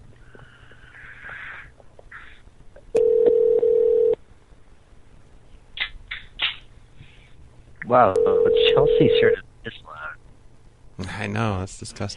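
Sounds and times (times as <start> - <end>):
telephone dialing tone: 3.0 - 4.2
speech: 7.9 - 9.8, 11.2 - 12.1.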